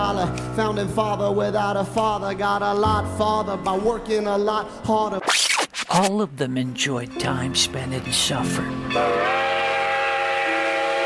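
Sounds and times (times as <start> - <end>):
speech: 0.2 - 9.4
steam train whistle: 9.0 - 11.0.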